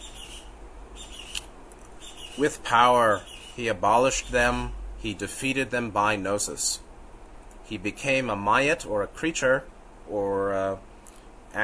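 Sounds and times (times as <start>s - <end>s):
bird calling: 0.0s - 4.8s
steady low hum: 0.0s - 11.6s
speech: 2.4s - 6.8s, 7.7s - 10.9s.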